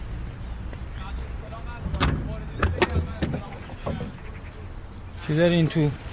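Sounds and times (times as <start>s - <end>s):
low rumbling background: 1.3s - 5.2s
metallic clunks and clicks of a car hood latch being released: 1.9s - 4.1s
speech: 5.3s - 6.1s.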